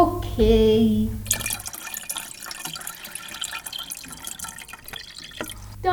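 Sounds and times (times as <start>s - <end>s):
speech: 0.0s - 1.3s
water pouring steadily into a cup: 1.2s - 5.8s.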